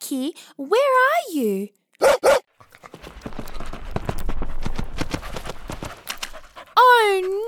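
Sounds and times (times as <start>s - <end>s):
speech: 0.1s - 2.4s
dog barking: 2.0s - 2.5s
dog paw steps scrabbling and knocking as it scampers around: 2.7s - 7.4s.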